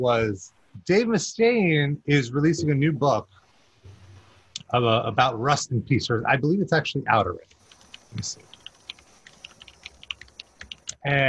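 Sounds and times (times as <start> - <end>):
speech: 0.0 - 3.4, 4.7 - 8.5, 11.0 - 11.2
extra clicky old-school computer keyboard clacking: 7.5 - 11.0.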